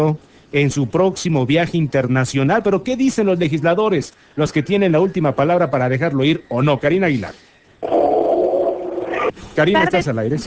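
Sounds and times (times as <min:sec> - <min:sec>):
speech: 0:00.0 - 0:08.0, 0:09.6 - 0:10.4
fox giving a harsh hoarse scream: 0:07.8 - 0:09.4.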